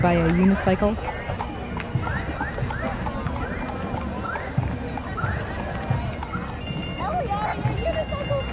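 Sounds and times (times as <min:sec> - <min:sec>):
speech: 0:00.0 - 0:01.2
crowd noise: 0:00.0 - 0:08.5
horse hooves clip-clopping on a hard street: 0:00.0 - 0:08.5.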